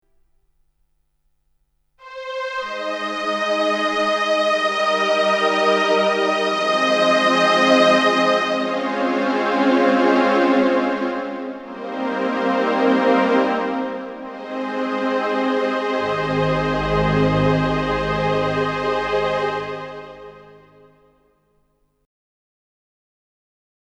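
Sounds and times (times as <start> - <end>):
CLP575 digital piano strings voice: 2.1 - 20.8.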